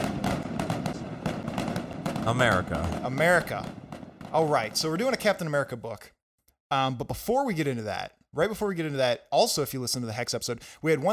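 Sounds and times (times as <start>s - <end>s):
fireworks sound effect crackling and bursting: 0.0s - 5.4s
speech: 2.3s - 11.1s.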